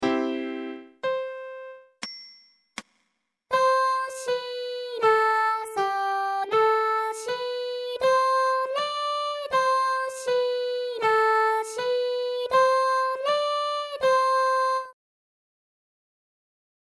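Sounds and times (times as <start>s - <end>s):
piano on the left channel: 0.0s - 2.0s, 3.5s - 15.0s
vocals on the right channel: 3.5s - 15.0s.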